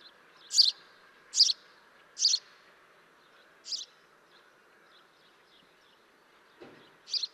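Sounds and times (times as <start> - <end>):
house sparrow chirping: 0.0 - 2.5, 3.6 - 6.1, 6.9 - 7.3.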